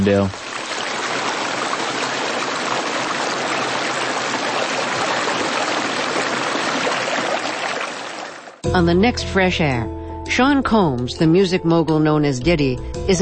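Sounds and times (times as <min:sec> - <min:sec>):
speech: 0:00.0 - 0:00.4, 0:08.7 - 0:13.2
creek water flowing: 0:00.0 - 0:08.6.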